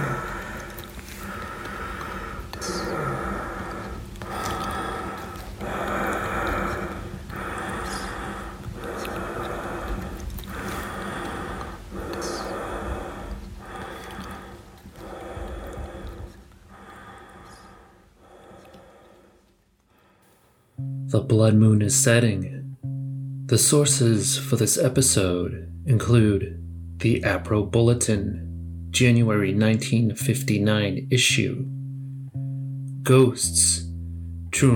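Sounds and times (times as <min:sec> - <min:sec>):
heavy labored rasping breathing: 0:00.0 - 0:20.8
speech: 0:21.1 - 0:22.6, 0:23.5 - 0:31.7, 0:33.0 - 0:33.8, 0:34.5 - 0:34.7.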